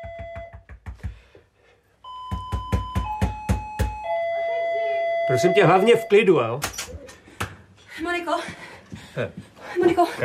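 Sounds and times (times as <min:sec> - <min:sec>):
doorbell ringing with bright metallic chimes: 0:00.0 - 0:00.6, 0:02.0 - 0:06.5
speech: 0:05.3 - 0:06.8, 0:09.2 - 0:10.2.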